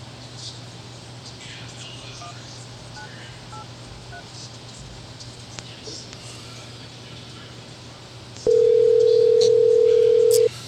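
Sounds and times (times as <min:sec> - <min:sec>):
telephone ring tone: 0:08.5 - 0:10.5.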